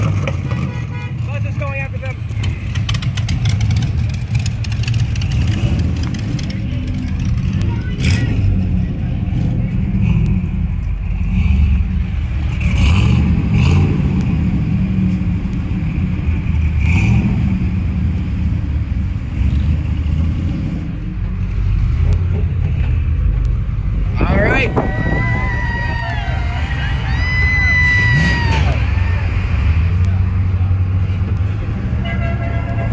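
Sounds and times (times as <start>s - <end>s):
bus engine rumbling and straining uphill: 0.0s - 32.9s
faint traffic: 0.0s - 32.9s
horn toot: 32.0s - 32.9s.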